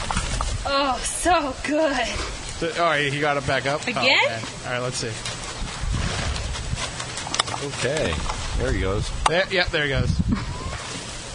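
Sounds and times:
speech: 0:00.6 - 0:05.3, 0:07.6 - 0:10.6
horse passing gas: 0:05.8 - 0:07.2.

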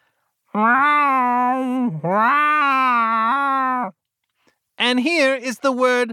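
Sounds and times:
person imitating long loud cat meows: 0:00.5 - 0:04.0
speech: 0:00.6 - 0:02.8, 0:04.8 - 0:06.1.

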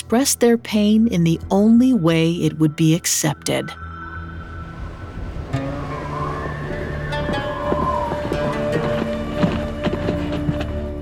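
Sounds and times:
faint tonal hum: 0:00.0 - 0:10.9
speech: 0:00.1 - 0:03.9
steady low rumble: 0:01.4 - 0:09.8
horses' hooves clip-clopping outside: 0:05.8 - 0:11.0.

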